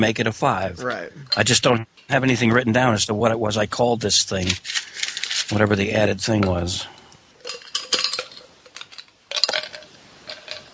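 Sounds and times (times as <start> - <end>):
speech: 0.0 - 7.0
ice clinking and rattling against glass: 7.4 - 10.7.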